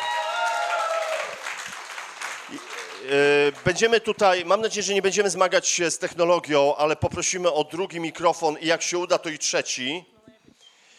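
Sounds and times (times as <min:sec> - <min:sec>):
audience applause: 0:00.0 - 0:04.5
speech: 0:02.5 - 0:10.2.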